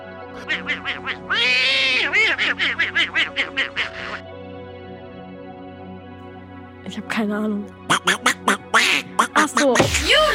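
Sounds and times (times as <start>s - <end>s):
cartoon duck's raspy quacking laugh: 0.4s - 4.2s, 7.9s - 10.0s
speech: 0.4s - 4.3s, 6.9s - 10.3s.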